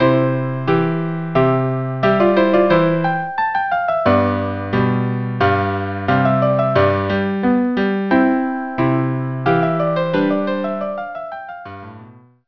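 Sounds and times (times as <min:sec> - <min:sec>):
andante music piece: 0:00.0 - 0:12.2.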